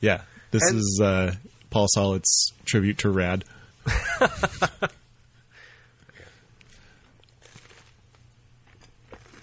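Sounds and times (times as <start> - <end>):
speech: 0.0 - 5.0
low steady hum: 0.0 - 9.4
laughter: 3.9 - 5.0
soft chewing of pizza: 6.6 - 9.4
crunching bites of pizza: 7.2 - 9.4.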